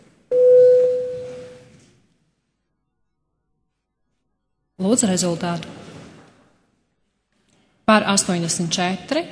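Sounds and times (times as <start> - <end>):
parliamentary voting electronic bell tone: 0.3 - 1.7
speech: 4.8 - 5.9, 7.9 - 9.3.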